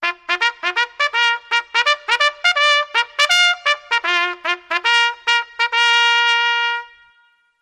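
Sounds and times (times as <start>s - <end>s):
solo bugle call with reverb: 0.0s - 7.5s.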